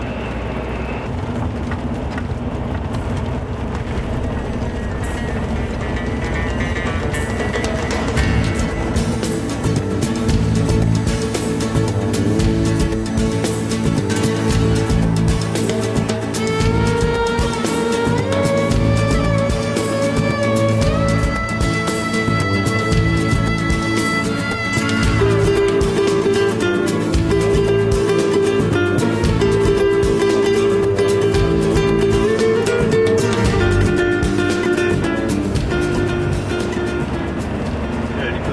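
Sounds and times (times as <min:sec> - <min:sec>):
car engine and road rumble at low speed in a queue behind a bus in the Anti-Atlas: 0:00.0 - 0:38.5
deep drone: 0:00.0 - 0:38.5.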